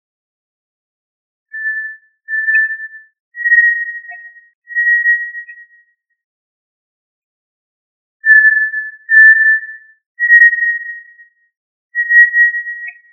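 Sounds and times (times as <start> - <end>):
tinamou whistled call: 1.5 - 5.8, 8.2 - 11.3, 12.0 - 13.1.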